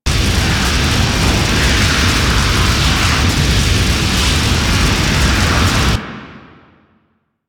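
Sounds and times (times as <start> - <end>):
flamethrower fire: 0.0 - 6.8.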